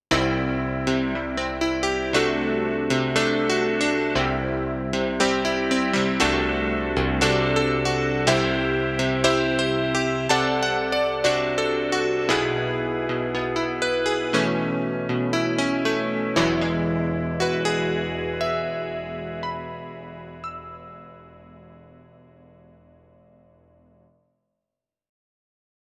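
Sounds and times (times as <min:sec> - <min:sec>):
Yamaha Tyros3 CP80 keyboard sound: 0:00.1 - 0:22.1.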